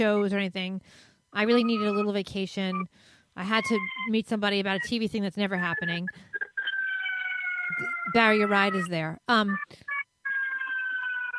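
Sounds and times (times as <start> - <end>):
speech: 0.0 - 6.3, 7.7 - 9.9
ambulance siren wailing: 1.6 - 2.1, 5.6 - 11.3.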